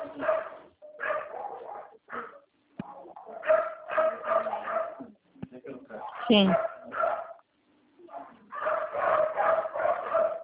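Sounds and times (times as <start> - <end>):
dog barking: 0.1 - 5.1, 5.9 - 7.4, 8.1 - 10.4
speech: 6.3 - 6.7.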